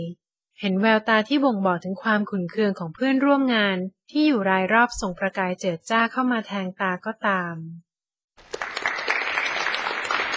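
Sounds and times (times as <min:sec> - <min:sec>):
speech: 0:00.0 - 0:07.8
thunderous applause from a board of executives: 0:08.4 - 0:10.3.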